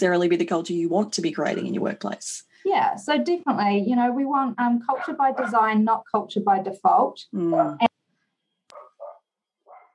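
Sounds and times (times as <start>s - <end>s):
speech: 0.0s - 8.0s
dog barking: 4.9s - 5.7s, 8.7s - 9.9s.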